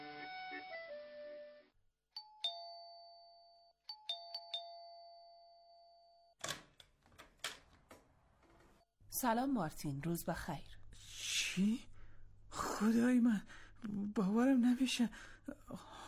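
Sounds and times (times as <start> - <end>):
doorbell chiming: 2.2 - 6.4
speech: 9.2 - 10.8, 11.6 - 11.9, 12.8 - 15.9.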